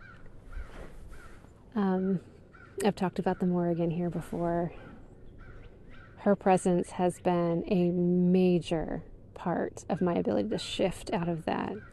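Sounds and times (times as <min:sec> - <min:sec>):
crows cawing: 0:00.0 - 0:01.4, 0:05.3 - 0:06.2
low steady outdoor rumble: 0:00.0 - 0:11.9
speech: 0:01.8 - 0:04.9, 0:06.2 - 0:11.9.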